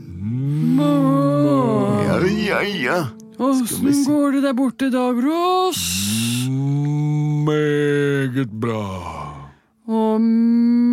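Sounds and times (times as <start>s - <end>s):
cow mooing on a farm: 0.0s - 3.1s
speech: 2.5s - 6.2s, 7.4s - 9.2s, 9.9s - 10.9s.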